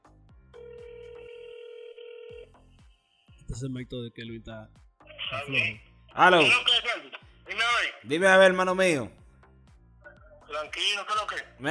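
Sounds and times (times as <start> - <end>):
telephone ringing with an incoming call: 0.5 - 2.6
speech: 3.5 - 9.2, 10.6 - 11.6.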